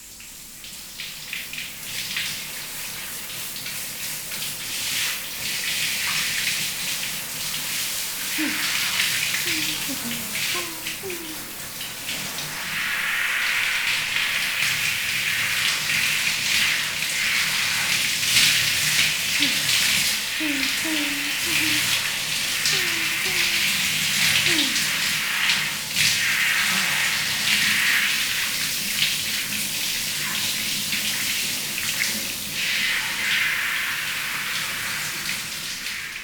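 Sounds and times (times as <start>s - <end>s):
running water rinsing shampoo off hair: 0.6s - 36.2s.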